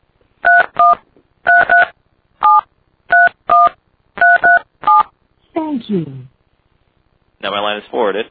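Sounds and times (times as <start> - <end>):
touch-tone keypad dialing a phone number: 0.5 - 5.0
speech: 5.8 - 6.3, 7.4 - 8.2.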